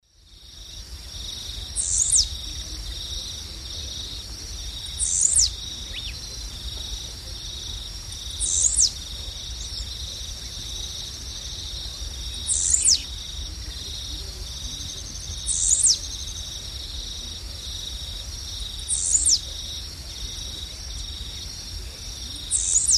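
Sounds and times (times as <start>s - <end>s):
Volatinia jacarina song in the Eastern Lowlands of South America: 1.0s - 18.2s, 18.8s - 22.9s.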